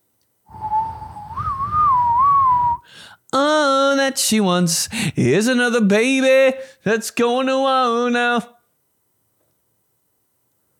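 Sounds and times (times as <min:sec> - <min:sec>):
cupped-hand whistle: 0:00.5 - 0:02.9
speech: 0:03.3 - 0:08.6.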